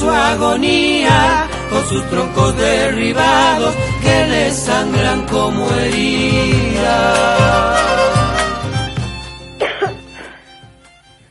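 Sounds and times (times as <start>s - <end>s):
speech: 0.3s - 8.2s
person coughing harshly: 9.6s - 10.5s.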